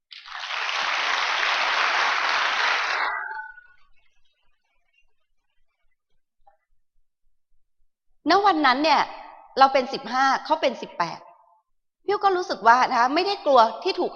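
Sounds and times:
scattered claps: 0:00.1 - 0:03.1
crowd dense steady applause: 0:00.1 - 0:03.6
speech: 0:08.3 - 0:11.3, 0:12.0 - 0:14.1.

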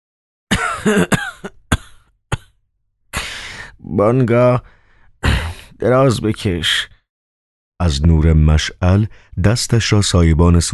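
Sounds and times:
voice acting out pained coughing of an ailing governor: 0:00.5 - 0:02.6
speech: 0:00.8 - 0:01.6, 0:03.9 - 0:06.9, 0:07.8 - 0:10.7.

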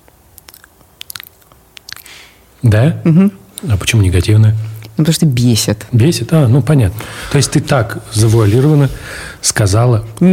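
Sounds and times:
crunchy chewing of a person eating: 0:00.0 - 0:02.4
speech: 0:02.6 - 0:10.3
soft rustle: 0:07.2 - 0:09.1.

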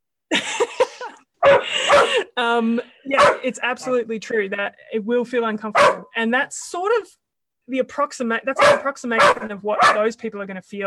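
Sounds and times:
dogs barking in rough overlapping yaps: 0:01.4 - 0:02.2, 0:03.2 - 0:04.0, 0:05.7 - 0:06.1, 0:08.6 - 0:10.1
speech: 0:02.4 - 0:10.8.

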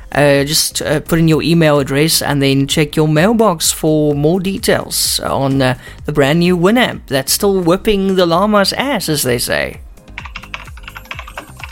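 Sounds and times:
speech: 0:00.2 - 0:09.9
typing on a computer keyboard: 0:10.1 - 0:11.7.

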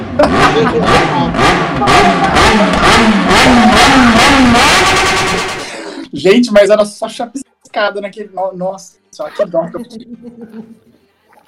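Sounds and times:
laughter: 0:00.0 - 0:03.0, 0:09.2 - 0:11.0
voice imitating a motorcycle engine revving: 0:00.0 - 0:05.6
speech: 0:00.2 - 0:05.1, 0:06.1 - 0:10.9.

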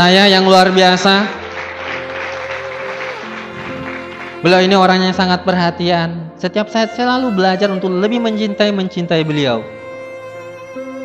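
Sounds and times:
speech: 0:00.0 - 0:01.4, 0:04.4 - 0:09.8
audience applause at a talk: 0:00.6 - 0:04.7.

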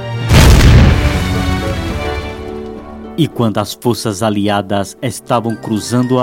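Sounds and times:
explosion of explosives detonated on a bridge with deep rumbling boom: 0:00.2 - 0:02.7
speech: 0:03.2 - 0:06.2.

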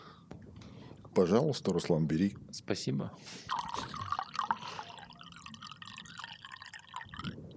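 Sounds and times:
speech: 0:01.2 - 0:04.0
wine pouring from a bottle into a glass: 0:03.5 - 0:07.4.

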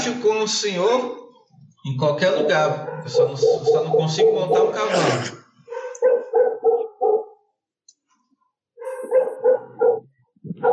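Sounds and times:
speech: 0:00.0 - 0:01.2, 0:01.8 - 0:05.4
dog barking outside: 0:02.3 - 0:04.9, 0:05.6 - 0:07.4, 0:08.8 - 0:10.7.

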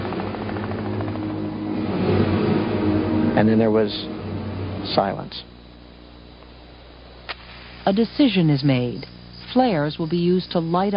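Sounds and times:
helicopter flying at night during a gun battle: 0:00.0 - 0:05.5
speech: 0:03.4 - 0:04.2, 0:04.9 - 0:05.5, 0:07.9 - 0:10.9.

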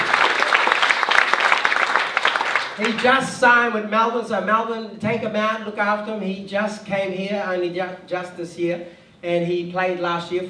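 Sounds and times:
audience clapping: 0:00.0 - 0:03.2
speech: 0:02.8 - 0:10.4.

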